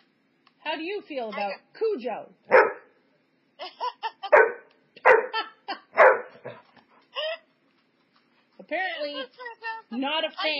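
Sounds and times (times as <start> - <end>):
speech: 0.7 - 2.7, 8.7 - 10.5
dog barking with sharp barks and higher yips: 2.5 - 2.9, 4.3 - 5.4, 6.0 - 6.6.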